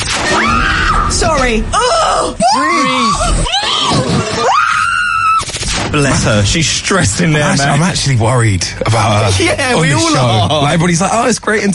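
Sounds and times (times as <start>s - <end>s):
woman screaming in fright: 0.3s - 5.5s
speech: 1.4s - 4.5s, 5.9s - 11.7s.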